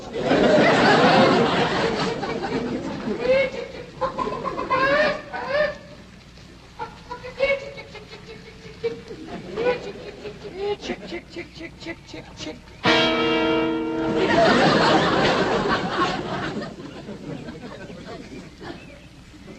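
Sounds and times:
laughter: 0.0 - 19.5
murmuring voices: 0.0 - 19.5
chickens clucking: 1.1 - 19.5
rustling and scuffling: 3.8 - 10.5.

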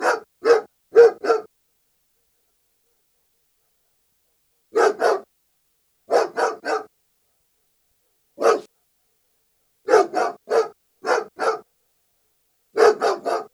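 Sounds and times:
German Shepherd barking: 0.0 - 1.5, 4.7 - 5.3, 6.1 - 6.9, 8.4 - 8.7, 9.9 - 11.7, 12.8 - 13.5.

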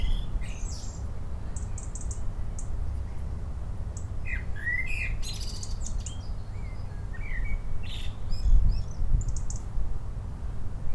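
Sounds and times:
Common blackbird Turdus merula giving fluted notes and squeaky twitters: 0.0 - 2.7, 4.0 - 9.6
low rumbling background noise: 0.0 - 10.9.

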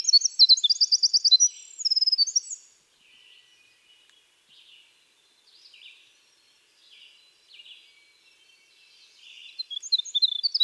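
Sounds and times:
winter wren Troglodytes hiemalis singing buzzy trills and clear chips: 0.0 - 2.7, 9.4 - 10.6.

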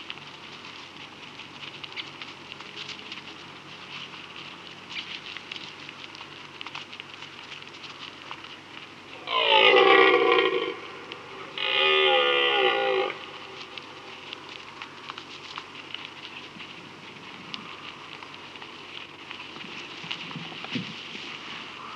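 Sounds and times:
background hiss: 0.0 - 21.9
red deer Cervus elaphus giving a loud harmonic-rich call: 9.1 - 13.8.

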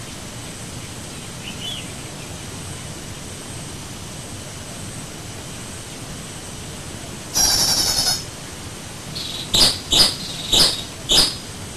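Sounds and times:
White-breasted waterhen calling: 7.4 - 8.3, 9.2 - 11.6.

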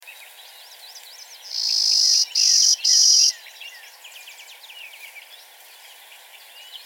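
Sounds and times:
clay-colored sparrow Spizella pallida buzzy song: 0.2 - 6.8
quiet background bird chips: 0.9 - 3.4.

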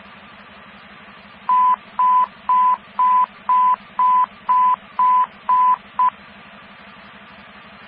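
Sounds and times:
radio dispatch alert tones of high beeps: 1.5 - 6.1.

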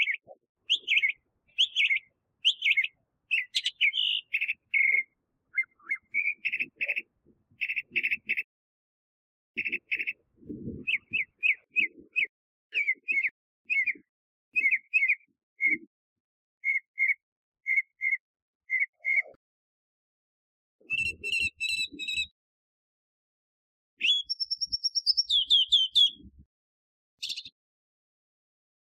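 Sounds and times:
northern mockingbird Mimus polyglottos song: 0.0 - 8.5, 9.6 - 15.9, 16.6 - 19.4, 20.8 - 22.3, 24.0 - 26.4, 27.2 - 27.6.

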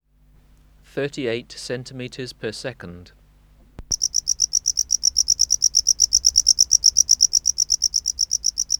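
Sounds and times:
speech: 1.0 - 3.2
Gryllodes sigillatus tropical house cricket chirping: 3.9 - 8.7.

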